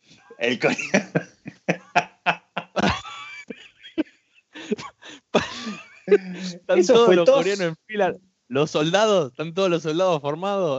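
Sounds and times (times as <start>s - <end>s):
speech: 0.4s - 1.3s, 6.7s - 10.7s
laughter: 0.4s - 4.0s, 4.6s - 7.7s
raspy throaty hacks: 0.4s - 4.0s, 4.6s - 10.7s
person imitating coughing: 0.6s - 3.5s, 4.6s - 7.6s.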